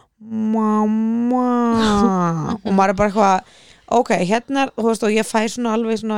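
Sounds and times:
adult imitating a young son's whiny voice: 0:00.2 - 0:02.6
laughter: 0:01.7 - 0:03.2
speech: 0:02.8 - 0:06.1.

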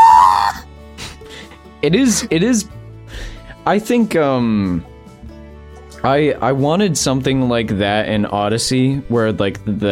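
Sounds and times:
person screaming: 0:00.0 - 0:00.6
speech: 0:01.8 - 0:02.8, 0:03.6 - 0:04.9, 0:06.0 - 0:09.8.

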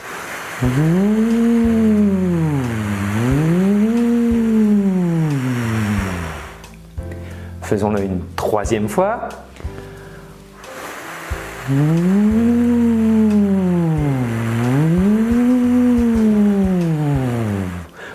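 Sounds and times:
speech: 0:00.6 - 0:01.4, 0:07.7 - 0:09.5, 0:11.7 - 0:13.4
voice humming in siren-like glides as a vocal breathing exercise: 0:00.6 - 0:06.6, 0:11.5 - 0:18.0.

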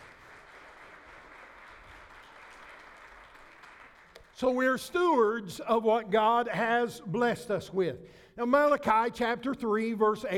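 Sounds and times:
audience clapping: 0:00.0 - 0:04.6
speech: 0:04.4 - 0:10.3.

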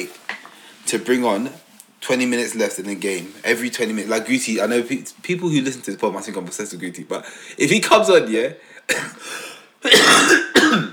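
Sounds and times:
speech: 0:00.9 - 0:10.9
man with a bad cough coughing harshly: 0:08.9 - 0:10.9.

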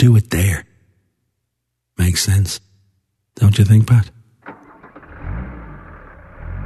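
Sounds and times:
speech: 0:02.2 - 0:02.7, 0:03.4 - 0:04.2
taxi engine revving as the taxi pulls away: 0:04.5 - 0:06.6.

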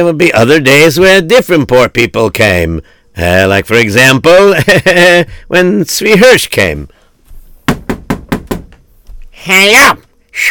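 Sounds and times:
speech: 0:00.0 - 0:07.0, 0:09.4 - 0:10.4
laughter: 0:04.5 - 0:05.3
knocking on a door: 0:07.6 - 0:08.8.

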